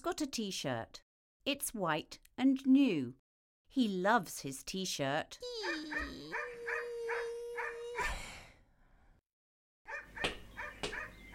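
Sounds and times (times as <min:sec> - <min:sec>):
speech: 0:00.0 - 0:06.5
small dog barking: 0:05.6 - 0:08.0, 0:09.9 - 0:11.3.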